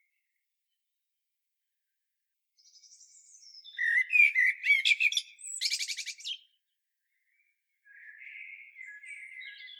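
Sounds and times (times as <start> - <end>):
common blackbird Turdus merula singing: 2.6 - 9.7.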